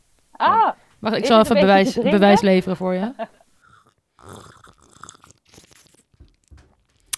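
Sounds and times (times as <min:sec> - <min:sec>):
speech: 0:00.4 - 0:03.4
laughter: 0:01.2 - 0:03.4
slurping port wine from a glass: 0:03.6 - 0:06.2.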